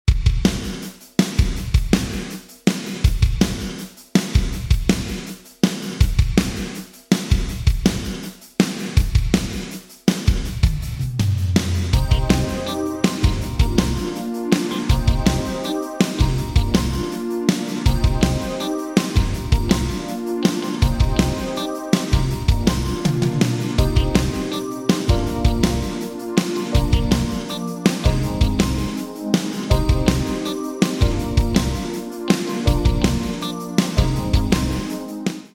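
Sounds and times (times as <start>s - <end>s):
drums: 0.0s - 35.5s.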